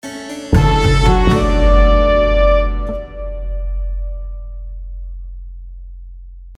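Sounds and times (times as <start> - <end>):
orchestral logo music: 0.0 - 4.8.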